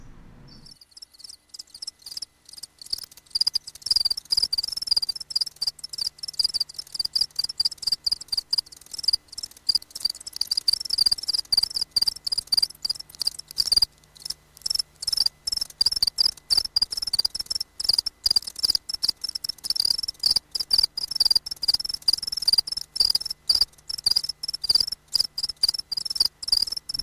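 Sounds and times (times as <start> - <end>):
house cricket chirping: 0.5 - 27.0.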